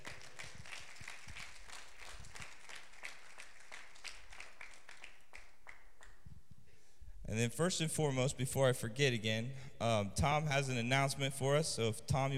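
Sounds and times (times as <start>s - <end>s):
room full of people applauding: 0.0s - 6.1s
speech: 7.3s - 12.3s.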